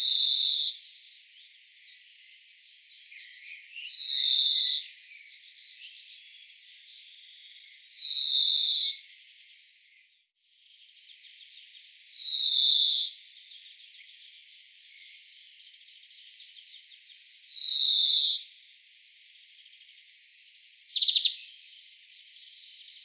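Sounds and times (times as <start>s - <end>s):
European greenfinch Chloris chloris short sharp trill: 0.0s - 9.1s, 11.4s - 15.1s, 16.4s - 19.1s, 21.0s - 21.5s, 22.4s - 23.0s.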